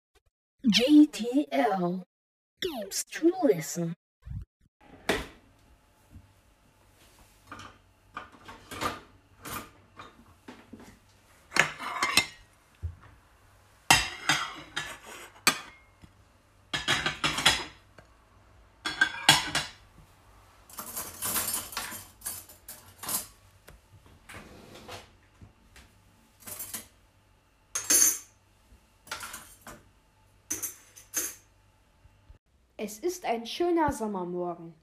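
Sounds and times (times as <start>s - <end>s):
speech: 0.6s - 4.0s, 32.9s - 34.8s
dishes and cutlery clattering while being washed: 11.5s - 12.4s, 13.9s - 15.9s, 16.8s - 17.8s, 18.8s - 19.8s, 20.7s - 23.4s, 29.1s - 29.8s, 30.5s - 31.5s.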